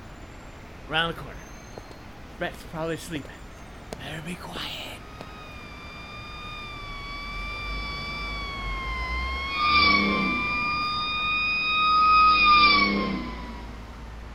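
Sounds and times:
low engine rumble of passing emergency vehicle: 0.0 - 14.3
speech: 0.9 - 1.5, 2.4 - 3.4, 4.0 - 4.9
emergency vehicle siren wailing: 3.3 - 14.3.

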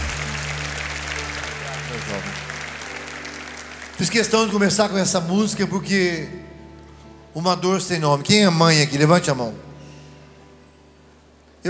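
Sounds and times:
audience applause: 0.0 - 5.2
speech: 4.0 - 6.5, 7.4 - 9.7.

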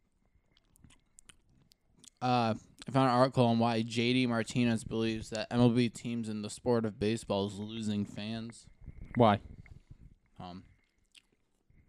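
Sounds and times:
quiet chewing with soft mouth noises: 0.1 - 2.9, 9.0 - 11.8
speech: 2.2 - 9.5, 10.4 - 10.7.

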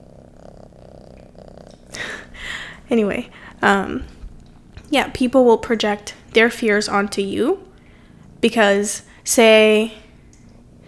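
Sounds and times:
cat purring: 0.0 - 4.8
speech: 2.9 - 4.2, 4.9 - 7.6, 8.4 - 10.0.

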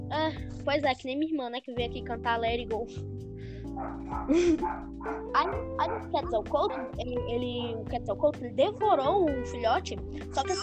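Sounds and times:
speech: 0.2 - 10.6
pet dog barking in yappy bursts: 3.7 - 7.8.

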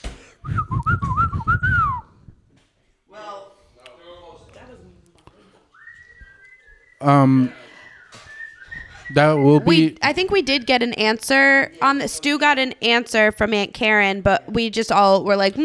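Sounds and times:
person whistling a family whistle call: 0.4 - 2.3, 5.7 - 9.7
speech: 7.0 - 7.6, 9.1 - 15.6.

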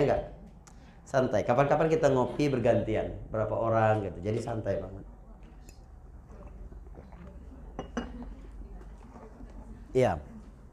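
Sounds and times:
speech: 0.0 - 0.4, 1.1 - 5.1, 10.0 - 10.3
cup clinking while person takes a drink: 5.7 - 8.4
faint shuffling: 6.2 - 10.7
brighter cup knock: 7.8 - 8.2.

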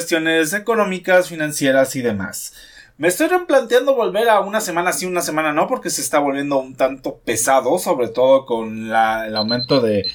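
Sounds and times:
speech: 0.0 - 10.1
electronic alarm ringing with a high-pitched tone: 9.2 - 10.1.

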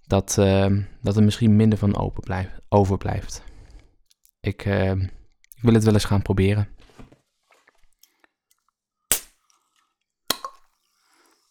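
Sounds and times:
speech: 0.1 - 3.5, 4.4 - 6.8
bottle cap snapping as it is pulled back and pushed over: 9.1 - 9.3, 10.3 - 10.7.

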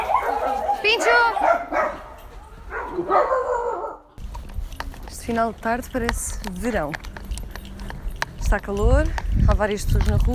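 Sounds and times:
dog barking: 0.0 - 4.1
outdoor noise: 0.0 - 10.3
speech: 0.9 - 1.7, 5.3 - 7.1, 8.5 - 10.3.

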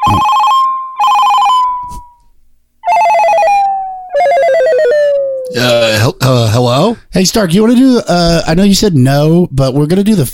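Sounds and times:
telephone ringing after a number is dialed: 0.0 - 2.2, 2.8 - 5.1
speech: 0.1 - 0.3, 5.6 - 10.3.

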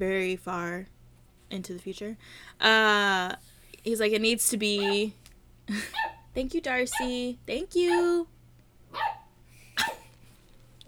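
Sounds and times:
speech: 0.0 - 8.3
faint low hum: 0.0 - 10.8
dog barking: 4.8 - 5.1, 5.9 - 6.3, 6.9 - 7.2, 8.9 - 10.1.

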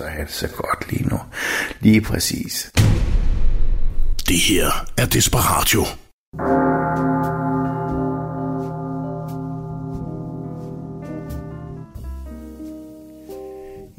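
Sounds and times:
speech: 0.0 - 3.1, 4.3 - 6.4
church bells ringing: 6.4 - 11.9.

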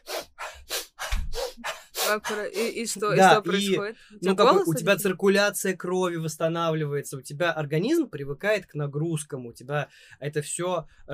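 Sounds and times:
quick sharp breaths of a breathing exercise: 0.0 - 2.4, 9.9 - 10.2
speech: 2.1 - 11.1.

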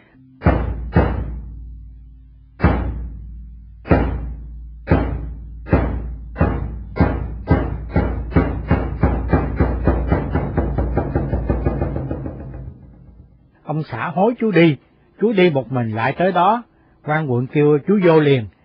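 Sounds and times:
drum beaten to call afternoon session: 0.4 - 1.6, 2.6 - 13.4
speech: 13.9 - 18.5.

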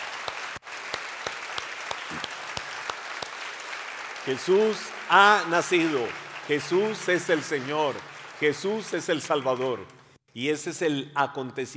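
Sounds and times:
audience applauding at Christmas in praise to God: 0.0 - 9.9
speech: 4.2 - 11.7.

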